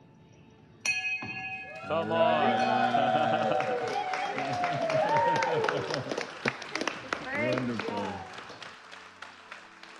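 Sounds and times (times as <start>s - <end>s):
small bell struck: 0.8s - 1.8s
speech: 1.9s - 3.8s
laughter: 1.9s - 8.2s.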